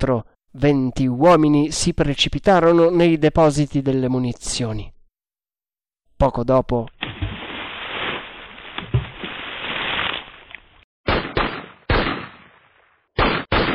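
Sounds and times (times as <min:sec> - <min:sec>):
speech: 0:00.0 - 0:04.9, 0:06.2 - 0:07.0
men throwing themselves from a ship into the sea: 0:07.0 - 0:10.8
gunshots: 0:11.1 - 0:13.7.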